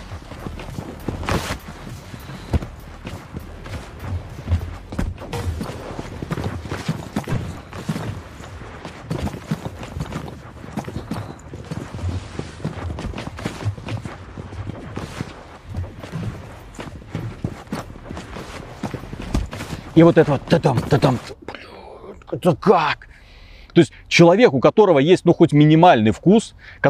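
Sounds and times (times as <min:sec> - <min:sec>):
many video game footsteps stomping in a lobby: 0:00.0 - 0:21.4
speech: 0:20.0 - 0:21.4, 0:22.4 - 0:23.1, 0:23.8 - 0:26.8.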